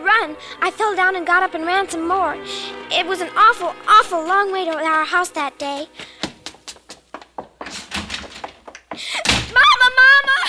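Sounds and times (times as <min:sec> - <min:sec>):
speech: 0:00.2 - 0:06.2
door slamming shut: 0:07.6 - 0:08.5, 0:09.2 - 0:09.6.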